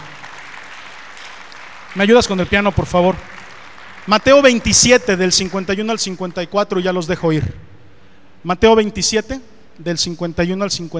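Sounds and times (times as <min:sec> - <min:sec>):
crowd of people clapping in sustained applause: 0:00.0 - 0:06.3
speech: 0:02.0 - 0:03.4, 0:04.0 - 0:07.6, 0:08.4 - 0:10.9.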